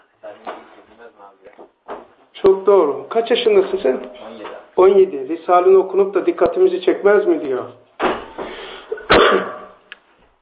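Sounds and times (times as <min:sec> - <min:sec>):
speech: 0:02.4 - 0:07.8
single sharp cough with throaty rasp and breathy exhale: 0:08.9 - 0:09.7.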